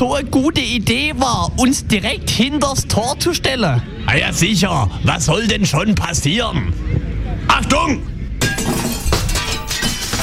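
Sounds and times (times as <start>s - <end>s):
speech: 0.0s - 8.1s
window glass shattering from a kicked football: 8.4s - 10.2s.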